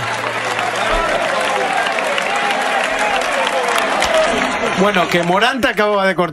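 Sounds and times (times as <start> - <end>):
huge bullring crowd applauding in an open arena: 0.0 - 6.3
speech: 4.8 - 6.3.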